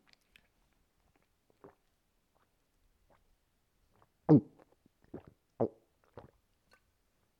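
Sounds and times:
person drinking water with throaty gulps: 0:00.0 - 0:02.5, 0:03.9 - 0:06.8.

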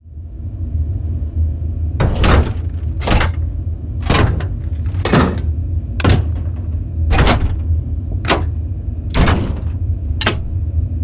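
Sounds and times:
steady low machine hum: 0:00.0 - 0:11.0
large industrial mechanical lever switches clacking and thudding: 0:02.0 - 0:10.6.

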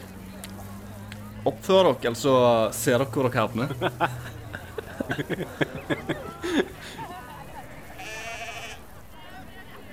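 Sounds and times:
speech: 0:01.4 - 0:04.4, 0:05.1 - 0:07.2
laughter: 0:01.9 - 0:09.9
flock of sheep bleating: 0:07.9 - 0:08.9.

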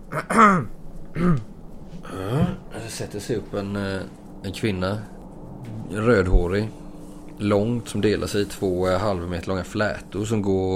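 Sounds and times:
person clearing throat: 0:00.1 - 0:02.6
speech: 0:00.2 - 0:01.5, 0:02.9 - 0:06.8, 0:07.4 - 0:10.7.

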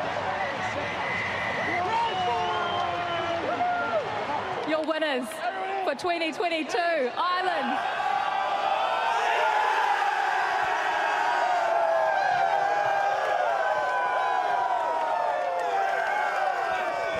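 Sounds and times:
rugby stadium crowd in Wellington roaring and cheering: 0:00.0 - 0:17.1
rugby stadium crowd whistles: 0:00.4 - 0:03.5
speech: 0:04.7 - 0:08.0.

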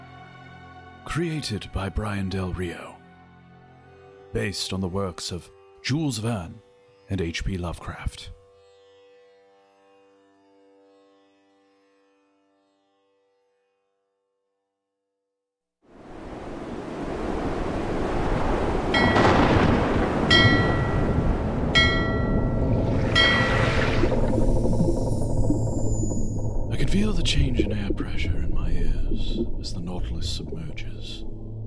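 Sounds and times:
speech: 0:01.0 - 0:02.9, 0:04.3 - 0:08.4
heavy waves crashing in a typhoon: 0:15.9 - 0:24.9
typhoon wind howling: 0:16.0 - 0:31.6
brief metallic tonal bursts: 0:19.0 - 0:19.6, 0:20.3 - 0:27.8.

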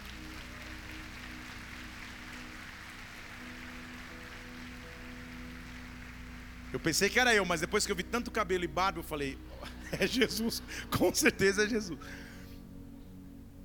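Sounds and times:
audience applauding in praise of the Lord: 0:00.0 - 0:07.4
speech: 0:06.7 - 0:12.3
laughter: 0:09.6 - 0:12.0.

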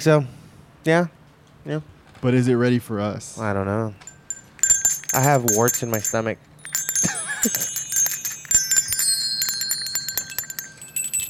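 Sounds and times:
speech: 0:00.0 - 0:04.1, 0:05.1 - 0:06.5, 0:07.4 - 0:07.8
faint clatter: 0:04.0 - 0:11.2
small bell ringing: 0:04.0 - 0:11.2.

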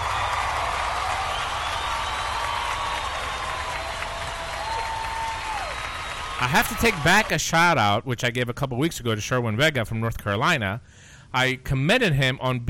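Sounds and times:
crowd applauding: 0:00.0 - 0:07.4
thin gliding whistles: 0:01.2 - 0:03.8, 0:05.6 - 0:06.4
speech: 0:06.4 - 0:12.6.

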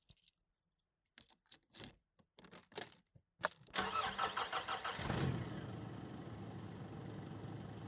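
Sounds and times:
keys jingling: 0:00.0 - 0:00.4, 0:01.0 - 0:03.8
car engine cranking, starting and idling: 0:03.8 - 0:07.8.

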